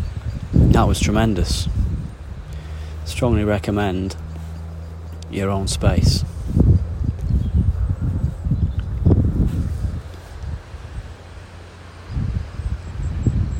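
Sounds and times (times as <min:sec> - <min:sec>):
gusty wind blowing through a tall fir tree: 0:00.0 - 0:13.5
speech: 0:00.8 - 0:01.8, 0:03.1 - 0:04.2, 0:05.3 - 0:06.4.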